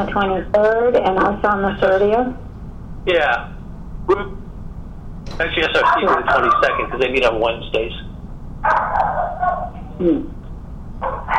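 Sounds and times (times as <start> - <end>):
speech: 0.0 - 4.4, 5.4 - 10.4
low hum: 0.0 - 11.3
dog barking at doorbell: 5.8 - 7.1, 8.6 - 9.8, 11.0 - 11.3.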